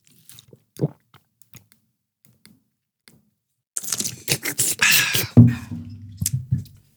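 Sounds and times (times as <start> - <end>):
person drinking water: 0.3 - 1.1, 3.8 - 6.3.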